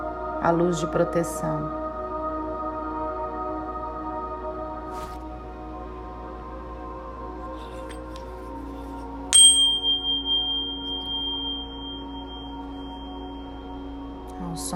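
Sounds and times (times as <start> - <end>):
low ambient drone: 0.0 - 14.7
speech: 0.4 - 1.8
single bell struck with a bright tone: 9.4 - 13.7.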